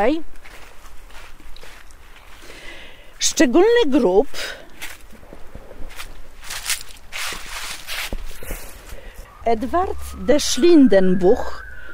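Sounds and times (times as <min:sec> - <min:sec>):
speech: 0:00.0 - 0:00.4, 0:03.4 - 0:04.6, 0:09.5 - 0:11.6
footsteps crunching among graves in a cemetery: 0:00.0 - 0:10.7.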